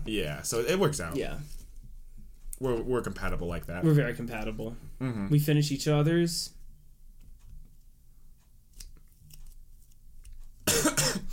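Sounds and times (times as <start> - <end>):
speech: 0.1 - 1.6, 2.6 - 6.6
person coughing: 10.7 - 11.3.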